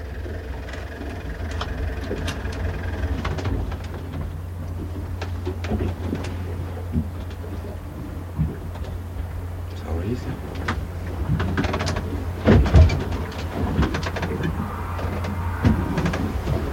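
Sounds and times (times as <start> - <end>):
motorboat engine droning: 0.0 - 16.7.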